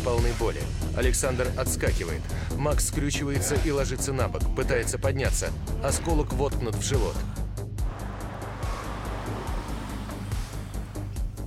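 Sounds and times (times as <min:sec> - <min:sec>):
speech: 0:00.0 - 0:07.4
dark BMW car driving up: 0:07.8 - 0:11.4.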